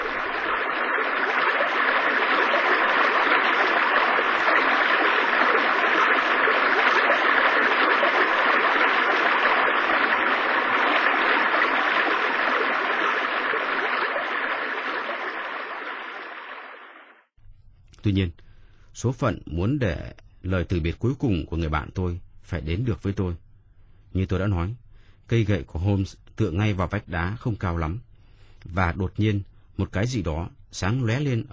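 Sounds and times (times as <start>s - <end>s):
waterfall roar: 0.0s - 16.6s
speech: 18.1s - 18.4s, 19.0s - 23.4s, 24.1s - 31.5s.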